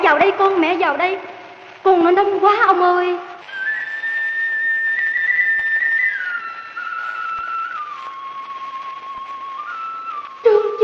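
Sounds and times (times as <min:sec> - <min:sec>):
speech: 0:00.3 - 0:03.3
bamboo flute played by a ferryman: 0:03.4 - 0:10.8.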